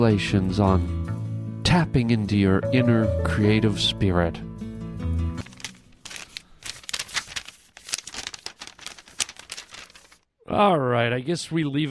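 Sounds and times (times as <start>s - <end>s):
speech: 0.0s - 1.0s, 1.7s - 4.5s, 10.5s - 11.8s
paper being crumpled into a ball: 5.4s - 10.3s.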